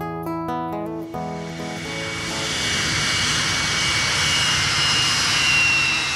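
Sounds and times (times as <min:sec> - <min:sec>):
musical notes: 0:00.0 - 0:03.9
jet airplane engine roaring in flight: 0:01.2 - 0:06.1.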